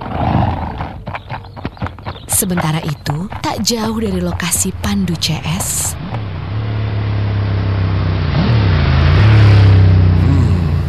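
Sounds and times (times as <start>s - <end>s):
speech: 2.4s - 6.2s
big motorbike engine riding through a forest: 3.3s - 10.8s.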